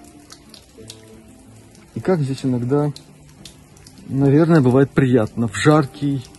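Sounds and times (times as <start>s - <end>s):
spring water trickling: 0.0s - 6.3s
speech: 2.0s - 3.1s, 4.1s - 6.3s.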